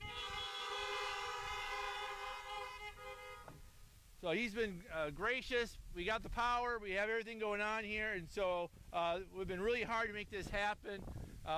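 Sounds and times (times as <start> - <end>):
car horn honking as a thank you: 0.0 - 3.7
speech: 4.2 - 11.5.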